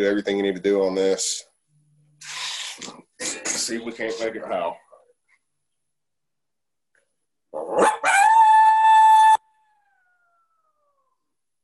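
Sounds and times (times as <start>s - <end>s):
speech: 0.0s - 1.5s, 2.2s - 4.8s
female lone howl blown on a two-reed diaphragm predator call: 7.6s - 11.3s.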